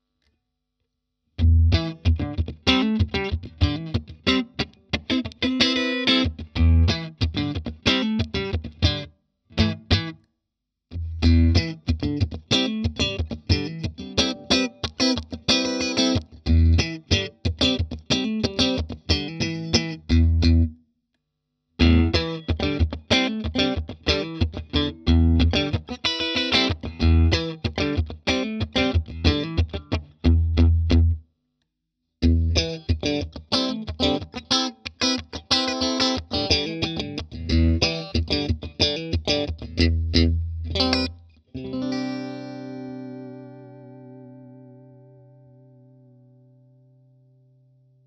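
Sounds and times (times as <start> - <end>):
clean Stratocaster electric guitar: 1.4 - 10.2, 10.9 - 20.8, 21.8 - 31.2, 32.2 - 48.0.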